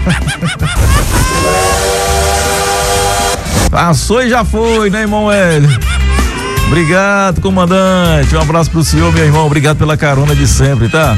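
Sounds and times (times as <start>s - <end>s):
laughter: 0.0s - 2.9s, 5.2s - 7.1s
speech: 0.1s - 2.3s, 3.7s - 5.9s, 6.7s - 11.1s
high-speed bullet train passing by: 0.9s - 3.7s
sustained steady train horn tone: 1.4s - 3.4s.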